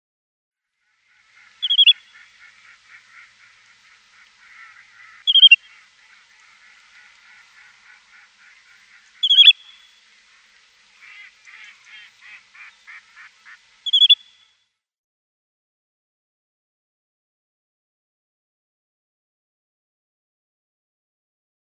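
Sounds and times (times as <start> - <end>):
Little Grebe winter calls: 0.9 - 14.5.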